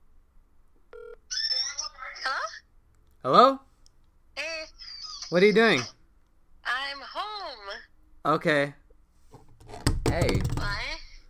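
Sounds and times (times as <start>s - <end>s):
phone ringback tone on an unanswered call: 0.9s - 1.2s
speech: 3.2s - 3.6s, 5.3s - 6.0s, 8.2s - 8.8s, 10.2s - 10.8s.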